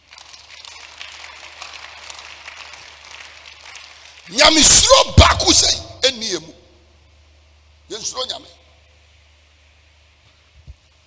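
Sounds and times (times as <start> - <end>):
audience clapping: 0.0 - 5.0
speech: 4.3 - 6.6, 7.9 - 8.6.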